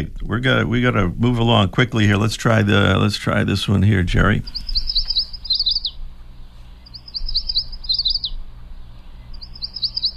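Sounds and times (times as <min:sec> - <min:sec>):
speech: 0:00.0 - 0:04.6
low steady hum: 0:00.0 - 0:10.1
yellow warbler singing: 0:01.4 - 0:10.1.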